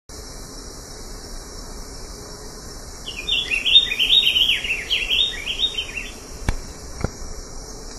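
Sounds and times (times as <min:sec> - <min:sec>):
Stephanophorus diadematus calling: 0:03.1 - 0:06.4.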